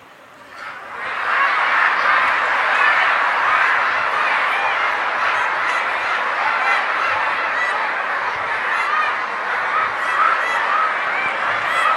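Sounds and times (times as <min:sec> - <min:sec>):
crowd of voices imitating duck quacking: 0:00.4 - 0:11.9
laughter: 0:00.6 - 0:11.9.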